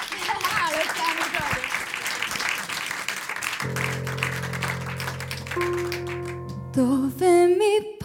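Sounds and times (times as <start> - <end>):
crowd applauding: 0.0 - 6.9
sustained music: 3.6 - 7.7.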